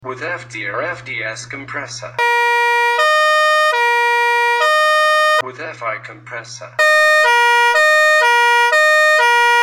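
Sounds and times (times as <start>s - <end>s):
Fiamm TA 2 906 C fanfare horn: 2.2s - 5.4s, 6.8s - 9.6s.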